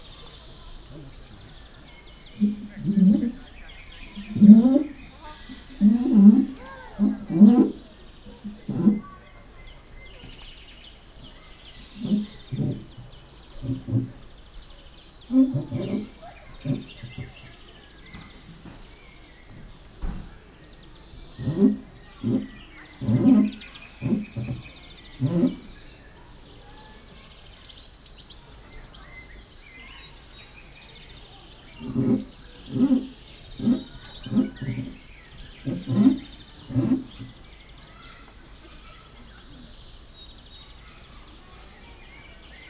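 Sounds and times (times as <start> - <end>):
white-handed gibbon moving its nose pressed against plexiglass: 2.1 - 9.2, 11.8 - 14.4, 15.2 - 18.6, 19.5 - 25.9, 31.7 - 37.5.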